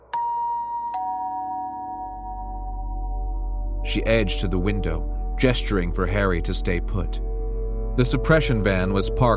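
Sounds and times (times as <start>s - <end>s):
doorbell chiming: 0.0s - 3.5s
speech: 3.8s - 7.3s, 8.0s - 9.3s.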